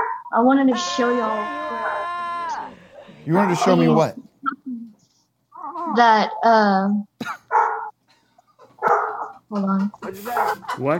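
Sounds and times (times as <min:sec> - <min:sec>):
five-day-old puppies barking and yipping: 0:00.0 - 0:04.1, 0:07.5 - 0:08.0, 0:08.6 - 0:09.5, 0:10.1 - 0:10.8
speech: 0:00.3 - 0:02.0, 0:03.2 - 0:04.2, 0:05.8 - 0:07.4, 0:09.5 - 0:10.9.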